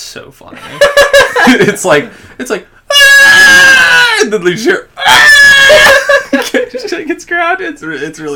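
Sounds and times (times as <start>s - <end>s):
speech: 0.1s - 5.3s, 6.4s - 8.3s
laughter: 0.5s - 2.1s, 5.3s - 7.1s
small child screaming shrilly: 2.9s - 4.3s, 5.0s - 6.1s.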